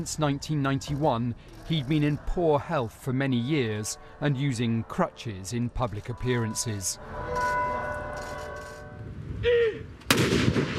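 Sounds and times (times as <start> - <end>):
speech: 0.0 - 7.5
steady ringing tones: 0.0 - 9.4
outdoor ambience: 0.0 - 10.7
cannon blast in a tribute salute: 10.1 - 10.7.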